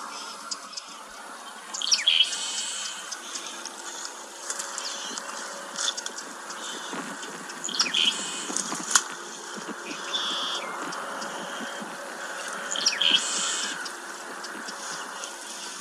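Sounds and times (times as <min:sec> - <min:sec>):
sparrow singing raspy insect-like buzzes and thin trills: 0:00.0 - 0:15.8.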